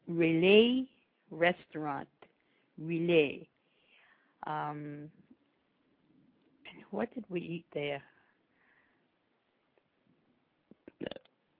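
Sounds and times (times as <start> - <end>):
speech: 0.1 - 2.2, 2.8 - 3.5, 4.4 - 5.2, 6.9 - 8.1
burp: 10.9 - 11.3.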